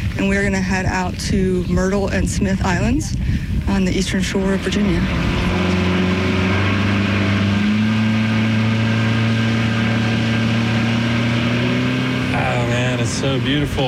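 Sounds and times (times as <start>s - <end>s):
motorboat engine droning on the way to Myrtle and Smith Islands, Virginia: 0.0s - 13.8s
speech: 0.2s - 5.6s, 13.2s - 13.8s
constant rushing noise: 3.6s - 13.8s.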